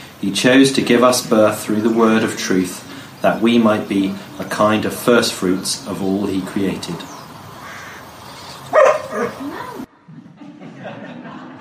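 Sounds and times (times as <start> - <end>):
speech: 0.2 - 7.1
dog barking and whining: 8.7 - 9.9
laughter: 9.3 - 11.5.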